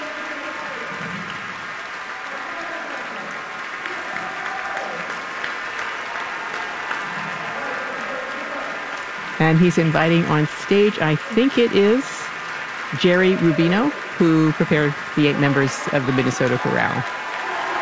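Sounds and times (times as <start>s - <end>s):
large concert audience applauding in a concert hall: 0.0s - 17.8s
speech: 9.4s - 12.1s, 12.9s - 17.2s.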